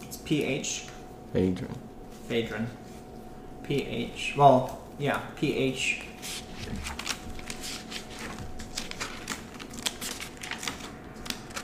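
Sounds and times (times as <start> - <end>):
speech: 0.3 - 2.9, 3.6 - 7.0
shuffling through sheets of paper: 5.9 - 11.6.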